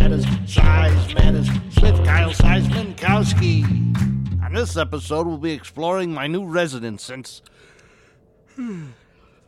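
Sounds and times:
speech: 0:00.2 - 0:01.9, 0:03.2 - 0:07.6, 0:08.6 - 0:09.0
person yawning: 0:08.5 - 0:09.1.

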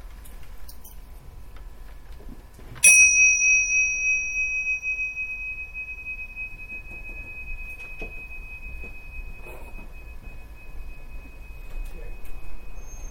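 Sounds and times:
quiet room noise: 0:00.0 - 0:13.0
single bell struck with a clear high ringing tone: 0:02.8 - 0:13.0.

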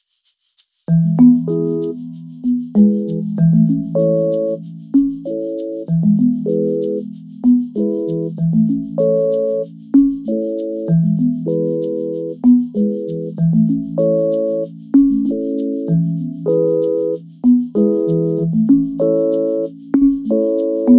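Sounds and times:
gentle marimbas: 0:00.9 - 0:20.9
vibes: 0:00.9 - 0:20.9.

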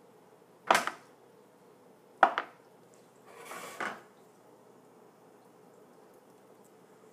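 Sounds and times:
scraping on a board: 0:03.3 - 0:04.0.

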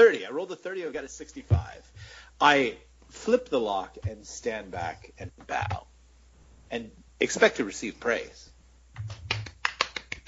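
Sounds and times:
speech: 0:00.0 - 0:05.9, 0:06.7 - 0:09.2
faint low hum: 0:00.0 - 0:10.2
crisp finger snaps from one hand: 0:09.0 - 0:10.2.

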